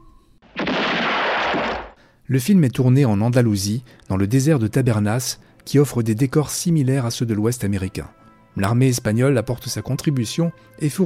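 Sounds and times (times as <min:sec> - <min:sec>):
gunshot blast in a western film score: 0:00.5 - 0:02.0
speech: 0:02.3 - 0:11.0.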